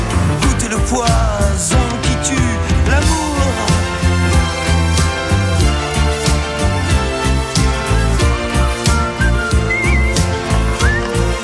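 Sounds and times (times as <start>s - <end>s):
loud full band arrangement with steady drums: 0.0s - 11.4s
whistled melody: 7.8s - 11.4s.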